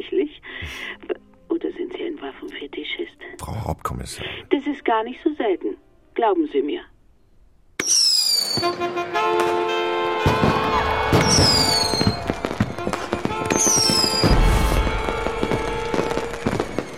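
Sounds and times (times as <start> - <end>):
speech: 3.5 - 6.9, 8.5 - 9.8, 11.1 - 11.8
whistling crackling firework bursts: 7.8 - 8.8, 10.3 - 16.9
firecrackers exploding in a dense barrage: 10.2 - 16.9.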